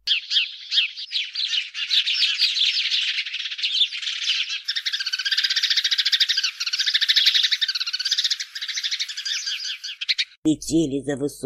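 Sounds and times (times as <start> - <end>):
flock of many small birds chirping and twittering: 0.0 - 10.4
speech: 10.4 - 11.4.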